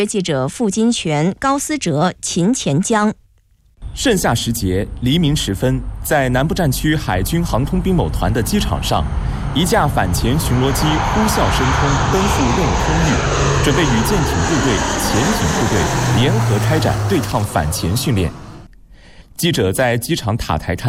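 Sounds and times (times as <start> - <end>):
speech: 0.0 - 3.2, 3.9 - 18.5, 19.4 - 20.8
anti-submarine patrol aircraft roaring as it takes off from a naval aviation airfield: 7.0 - 18.7.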